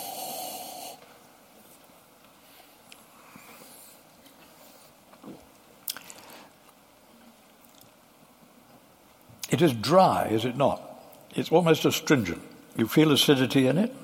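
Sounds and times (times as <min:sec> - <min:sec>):
person sniffing wine: 0:00.0 - 0:01.1
speech: 0:09.5 - 0:14.0.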